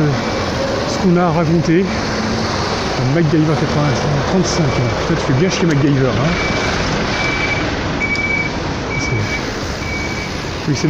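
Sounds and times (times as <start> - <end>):
truck backup alarm beeping: 0.0 - 1.4, 4.3 - 10.6
truck diesel engine rumble: 0.0 - 10.8
speech: 1.0 - 2.1, 3.0 - 6.9, 10.7 - 10.8.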